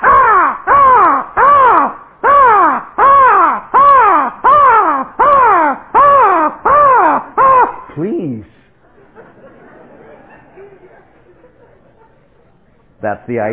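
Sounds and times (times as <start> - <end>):
crow cawing: 0.0 - 7.9
laughter: 8.8 - 12.6
speech: 13.0 - 13.5.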